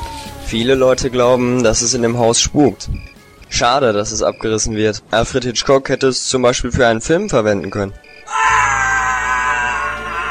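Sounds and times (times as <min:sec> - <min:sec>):
speech: 0:00.5 - 0:08.4
high scream in an old house said to be haunted: 0:08.2 - 0:10.3.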